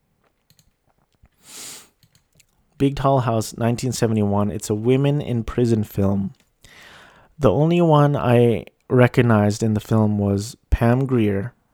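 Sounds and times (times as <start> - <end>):
keyboard keys clicking: 0.5 - 0.8
breathy hiss: 1.4 - 2.0, 6.6 - 7.4
speech: 2.8 - 6.4, 7.4 - 11.6.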